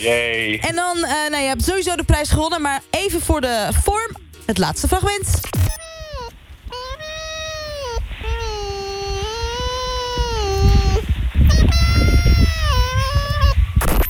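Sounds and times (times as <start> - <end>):
speech: 0.0 - 5.8
fox yawning with long high whiny squeals: 5.6 - 13.9.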